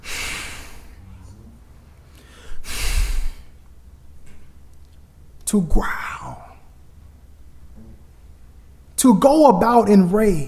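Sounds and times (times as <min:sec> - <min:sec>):
voice imitating a bull snorting through the nose: 0:00.0 - 0:01.9
speech: 0:05.5 - 0:06.1, 0:09.0 - 0:10.4.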